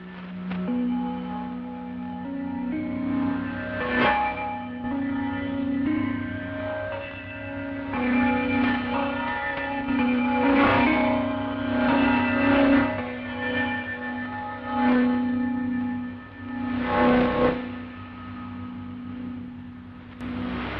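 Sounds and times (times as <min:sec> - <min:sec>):
radio interval signal of gongs and glockenspiel from Bangkok: 0:00.0 - 0:20.7
steady drone: 0:00.0 - 0:20.7.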